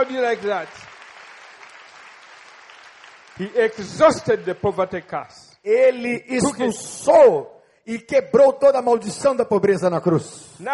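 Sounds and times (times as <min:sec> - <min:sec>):
speech: 0:00.0 - 0:00.8, 0:03.4 - 0:10.7
crowd applauding: 0:00.0 - 0:05.2.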